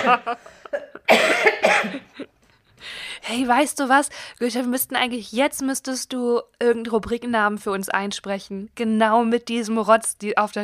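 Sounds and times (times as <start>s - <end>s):
laughter: 0.0s - 1.1s
person coughing harshly: 0.0s - 2.3s
speech: 0.0s - 10.6s
short breath: 2.8s - 3.3s.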